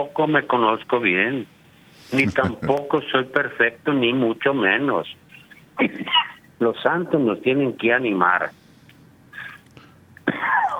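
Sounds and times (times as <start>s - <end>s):
speech: 0.0s - 5.2s, 5.8s - 8.6s
laughter: 2.1s - 2.8s
person coughing: 2.1s - 2.8s.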